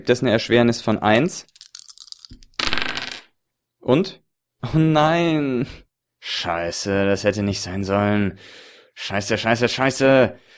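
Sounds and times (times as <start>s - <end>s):
speech: 0.0s - 1.5s, 3.9s - 10.5s
dice rolling across a hard surface: 1.4s - 3.3s.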